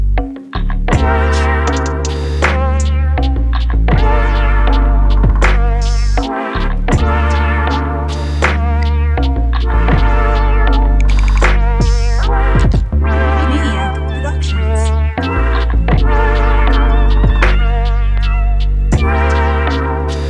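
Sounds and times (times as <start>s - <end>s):
lo-fi groove music: 0.2s - 20.2s.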